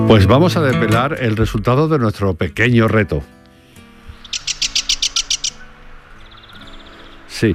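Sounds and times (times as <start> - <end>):
speech: 0.1 - 3.4, 7.4 - 7.5
Sardinian warbler singing in Andalusia: 3.6 - 7.5.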